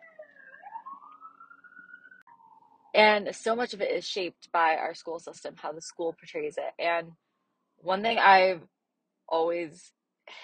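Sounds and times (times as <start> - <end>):
ambulance siren wailing: 0.0 - 3.4
speech: 3.0 - 7.2, 7.8 - 10.4.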